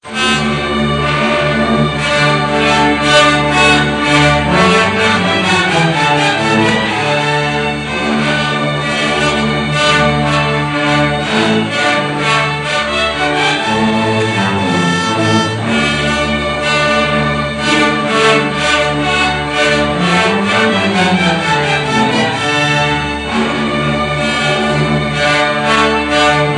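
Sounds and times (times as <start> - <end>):
trumpet in concert: 0.0 - 26.5.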